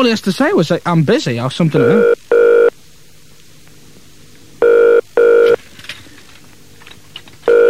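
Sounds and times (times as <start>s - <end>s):
speech: 0.0s - 2.2s
repeated electronic ringback tone of unanswered phone call: 1.8s - 2.7s, 4.6s - 5.6s, 7.5s - 7.6s.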